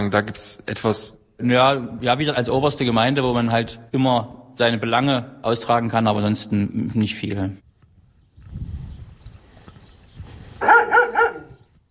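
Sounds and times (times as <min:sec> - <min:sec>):
speech: 0:00.0 - 0:07.6
dogs barking: 0:10.6 - 0:11.6.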